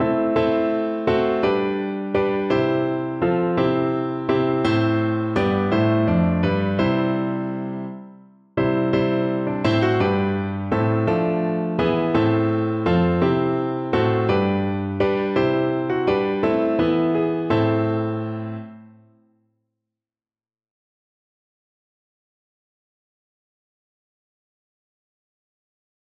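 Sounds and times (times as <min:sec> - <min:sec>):
piano piece: 0:00.0 - 0:19.2.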